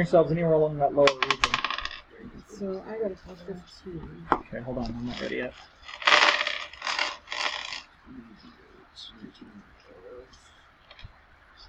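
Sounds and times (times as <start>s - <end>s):
speech: 0.0s - 1.4s, 2.2s - 6.3s, 8.1s - 9.7s
faint indistinct voices murmuring: 0.0s - 5.8s, 8.0s - 10.8s
dice rolling and clattering: 1.1s - 2.1s, 5.1s - 7.8s.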